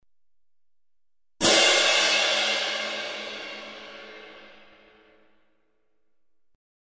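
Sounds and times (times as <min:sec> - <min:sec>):
cymbal: 0:01.4 - 0:05.6.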